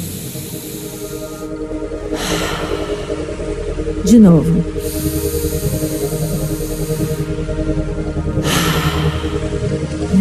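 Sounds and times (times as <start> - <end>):
quick exhale through mouth: 0.0 - 3.6, 4.6 - 7.4, 8.4 - 10.1
slow inhale: 0.0 - 4.0, 4.6 - 10.1
speech: 4.1 - 4.8.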